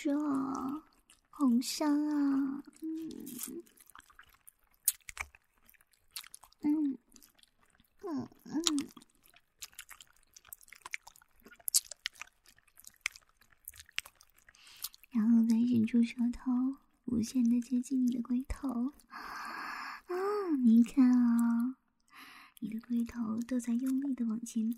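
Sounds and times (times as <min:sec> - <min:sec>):
speech: 0:00.0 - 0:00.6, 0:01.6 - 0:03.8, 0:08.0 - 0:09.0, 0:15.2 - 0:19.3, 0:20.1 - 0:21.8, 0:22.6 - 0:24.7
wet mouth sounds of sucking a lollipop: 0:02.6 - 0:05.4, 0:09.6 - 0:15.0
person humming: 0:02.8 - 0:03.6.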